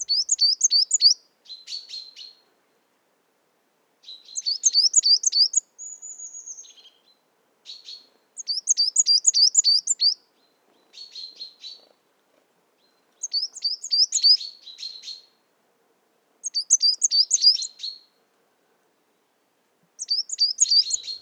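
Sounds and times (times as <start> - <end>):
bird trilling song in a mixed conifer and oak forest: 0.0 - 2.3, 4.1 - 7.0, 7.7 - 10.2, 13.2 - 15.3, 16.4 - 18.1, 20.0 - 21.2.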